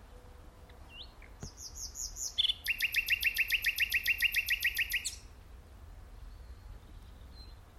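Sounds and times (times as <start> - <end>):
Common nightingale Luscinia megarhynchos song: 0.0 - 5.3, 6.2 - 7.7.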